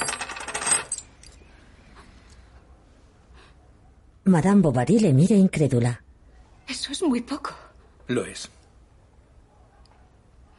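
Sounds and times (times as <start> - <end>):
coin clattering on a hard tabletop: 0.0 - 1.4
speech: 4.3 - 6.0, 6.7 - 8.6.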